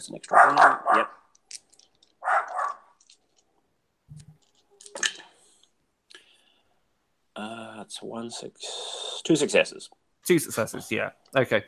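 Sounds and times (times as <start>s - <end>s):
speech: 0.0s - 1.2s, 7.4s - 11.6s
dog barking: 0.3s - 1.2s, 2.2s - 2.9s
faint clicks and rustles: 1.3s - 6.3s.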